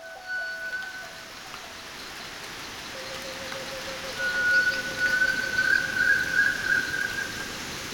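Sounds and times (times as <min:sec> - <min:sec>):
thin whistling tones, likely insects or birds: 0:00.0 - 0:01.3, 0:03.0 - 0:07.4
tropical rain pattering densely on forest leaves: 0:00.0 - 0:07.9.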